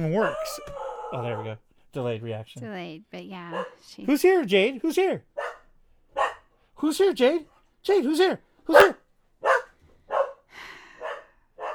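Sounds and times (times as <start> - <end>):
dog barking: 0.0 - 1.6, 3.5 - 4.0, 5.3 - 6.5, 8.7 - 11.7
speech: 0.0 - 5.4, 6.8 - 9.0.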